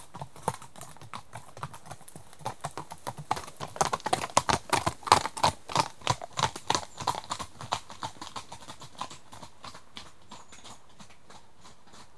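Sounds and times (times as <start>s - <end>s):
horse hooves clip-clopping on a hard surface: 0.0s - 12.1s.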